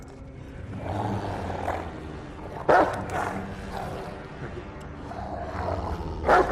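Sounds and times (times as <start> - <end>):
huge dog growling while chasing people in the fog: 0.7 - 4.5
huge dog barking while chasing people in the fog: 2.7 - 3.1, 6.3 - 6.4.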